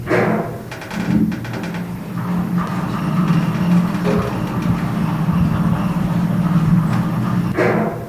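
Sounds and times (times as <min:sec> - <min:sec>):
wagon rides: 0:00.7 - 0:07.6.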